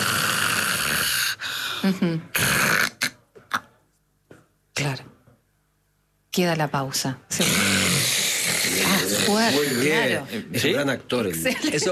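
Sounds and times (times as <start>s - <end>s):
person imitating snoring: 0.0s - 1.5s, 2.3s - 3.2s, 7.4s - 10.0s
speech: 1.8s - 2.6s, 6.4s - 7.9s, 8.8s - 11.9s.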